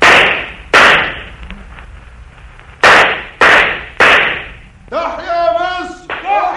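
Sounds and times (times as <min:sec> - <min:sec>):
gunfire from guards shooting: 0:00.0 - 0:01.4, 0:02.8 - 0:04.7, 0:06.1 - 0:06.4.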